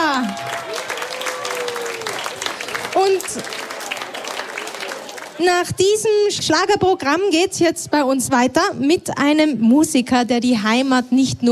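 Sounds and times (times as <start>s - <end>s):
audience applause after a live Schlager music performance: 0.0s - 5.4s
speech: 3.4s - 3.6s, 5.4s - 11.5s.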